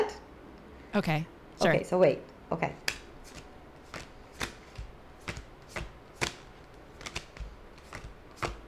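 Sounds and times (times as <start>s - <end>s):
speech: 0.9s - 2.9s
deck of cards being shuffled: 2.8s - 8.6s.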